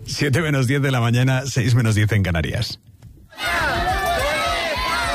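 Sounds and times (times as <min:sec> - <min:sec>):
speech: 0:00.2 - 0:03.6
large crowd of parents shouting a protest chant in unison: 0:03.3 - 0:05.1.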